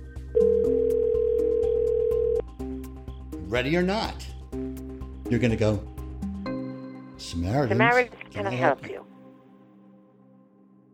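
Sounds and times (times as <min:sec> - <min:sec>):
helpline telephone ringing with a steady electronic tone: 0:00.4 - 0:02.4
speech: 0:03.5 - 0:04.3, 0:05.3 - 0:05.9, 0:07.3 - 0:09.0.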